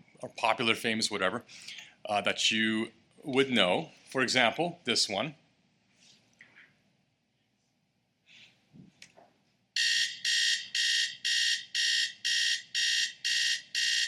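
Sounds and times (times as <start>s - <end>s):
speech: 0.2s - 5.4s
alarm clock blaring harsh electronic beeps: 9.8s - 14.0s.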